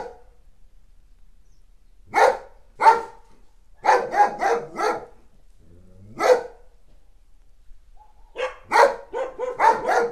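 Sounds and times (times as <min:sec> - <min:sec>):
dog barking: 0:00.0 - 0:00.3, 0:02.1 - 0:03.2, 0:03.8 - 0:05.2, 0:06.1 - 0:06.7, 0:08.0 - 0:10.1.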